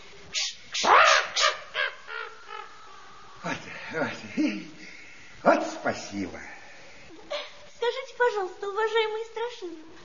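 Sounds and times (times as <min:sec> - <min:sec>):
crow cawing: 0:00.8 - 0:03.4
speech: 0:03.9 - 0:04.8, 0:05.4 - 0:06.6, 0:08.4 - 0:10.0.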